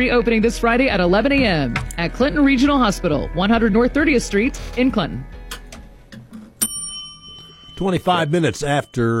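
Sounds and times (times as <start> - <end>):
speech: 0.0 - 5.4, 7.8 - 9.1
bell ringing: 6.6 - 9.1.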